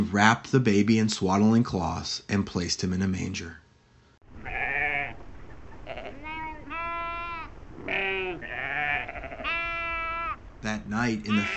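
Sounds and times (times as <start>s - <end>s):
speech: 0.0s - 3.6s, 10.6s - 11.5s
several sheep bleating: 4.4s - 5.2s, 5.8s - 10.4s, 11.2s - 11.5s.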